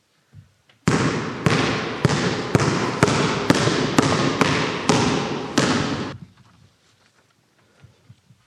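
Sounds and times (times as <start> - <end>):
basketball dribbled on a hard court: 0.8 - 6.2.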